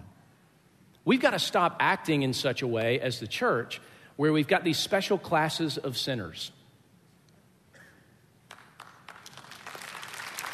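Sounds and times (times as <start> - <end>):
speech: 1.0 - 6.6
scattered hesitant audience clapping: 8.5 - 10.5.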